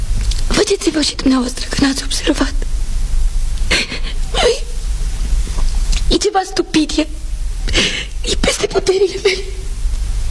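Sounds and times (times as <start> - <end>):
low hum: 0.0 - 10.3
speech: 0.7 - 2.7, 6.2 - 7.2, 7.8 - 9.6
woman sobbing: 3.7 - 4.8, 7.7 - 9.6.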